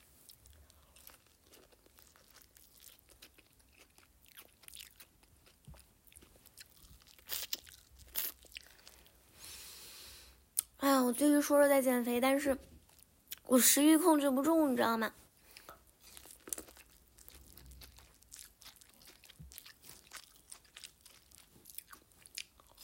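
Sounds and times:
crunchy biting and chewing of sweet fruit corn: 0.3s - 9.0s, 15.5s - 22.8s
speech: 11.1s - 12.7s, 13.5s - 15.2s.

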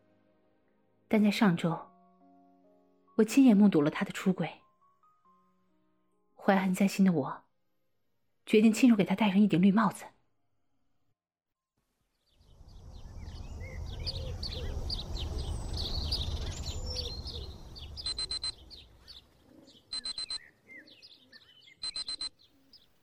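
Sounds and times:
speech: 1.1s - 1.9s, 3.2s - 4.6s, 6.4s - 7.4s, 8.5s - 10.2s
low ambient rumble: 12.4s - 19.0s
birds chirping: 12.4s - 23.0s
alarm clock buzzing: 18.1s - 18.6s, 20.0s - 20.4s, 21.8s - 22.3s.

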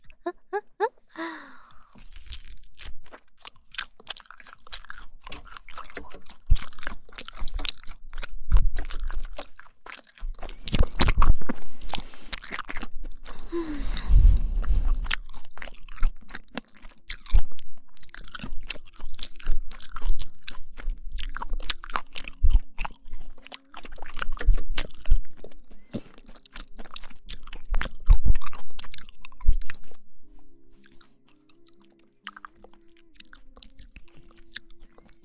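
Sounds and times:
chewing crunchy starch meat sausage: 1.3s - 35.2s.

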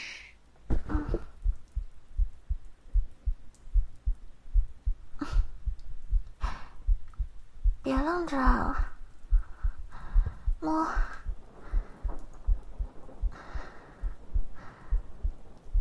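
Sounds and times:
human heartbeat: 0.7s - 15.7s
speech: 7.9s - 8.9s, 10.6s - 11.1s
breathy whooshes: 9.4s - 15.4s.

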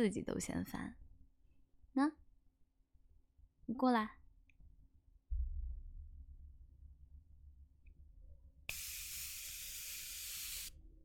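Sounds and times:
speech: 0.0s - 1.0s, 2.0s - 2.2s, 3.7s - 4.2s
hydrating facial mist spray hissing: 8.7s - 10.7s.

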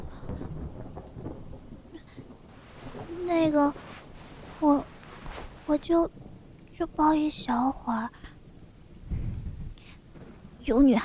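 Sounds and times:
dense falling rain: 0.0s - 9.1s, 9.8s - 11.0s
low rolling thunder rumbling: 0.0s - 11.0s
speech: 3.3s - 3.8s, 4.6s - 4.9s, 5.7s - 6.2s, 6.8s - 8.2s, 10.6s - 11.0s.

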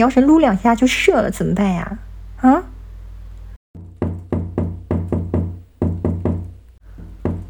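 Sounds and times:
speech: 0.0s - 2.7s
firm sharp knocking on a door: 3.8s - 7.4s.

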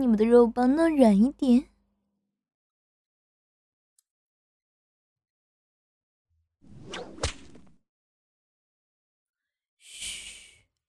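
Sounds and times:
speech: 0.0s - 1.7s
whip lashes with swish and sharp crack: 6.9s - 7.7s.

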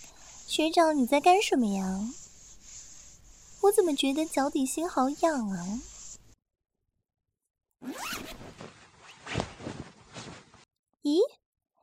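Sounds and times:
speech: 0.6s - 2.2s, 3.6s - 5.9s, 11.0s - 11.4s
trouser zipper being unzipped: 7.8s - 10.6s.

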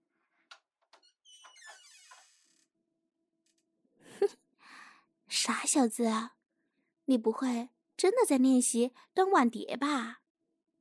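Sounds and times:
squeaky door hinge creak as a door swings open: 0.9s - 2.7s
speech: 5.7s - 6.4s, 7.1s - 10.2s.

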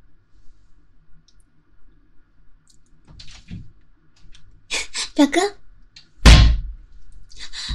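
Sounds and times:
speech: 5.2s - 5.6s
door slammed shut forcefully: 6.2s - 6.8s.

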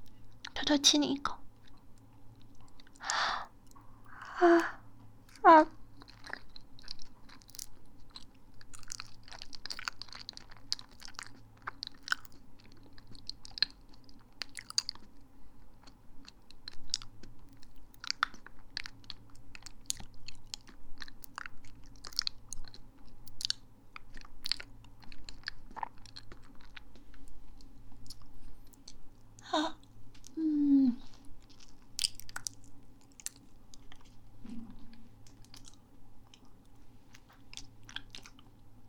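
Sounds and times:
faint steady hum: 0.0s - 38.8s
speech: 0.7s - 1.4s, 4.4s - 4.8s, 5.4s - 5.8s
person chewing and eating a sweet banana: 1.6s - 4.7s, 5.3s - 38.8s.

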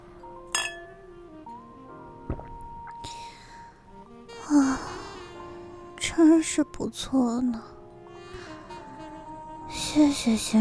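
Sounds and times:
glasses of liquor clinking together in a toast: 0.5s - 1.0s
speech: 6.4s - 7.8s, 10.0s - 10.6s.

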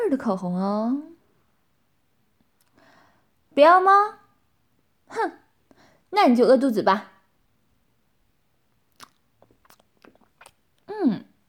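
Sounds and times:
speech: 0.1s - 1.1s, 3.6s - 4.2s, 5.1s - 5.4s, 6.1s - 7.1s, 10.9s - 11.3s
person chewing and eating beef: 8.9s - 11.4s.

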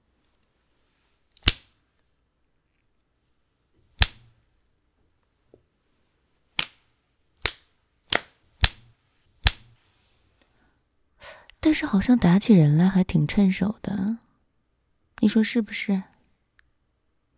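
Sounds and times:
whip cracks: 1.4s - 1.7s, 4.0s - 4.3s, 6.6s - 6.8s, 7.4s - 9.8s
speech: 11.7s - 14.2s, 15.2s - 16.1s.

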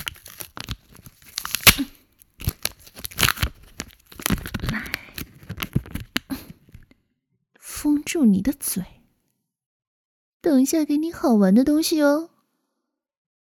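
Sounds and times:
adhesive tape being pulled off a roll: 0.0s - 5.7s
speech: 8.1s - 9.0s, 10.4s - 12.3s.

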